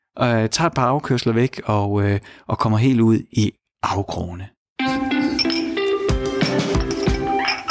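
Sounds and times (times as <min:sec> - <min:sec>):
speech: 0:00.2 - 0:04.6
glass clinking while mixing a cocktail: 0:05.2 - 0:05.8, 0:06.5 - 0:07.6.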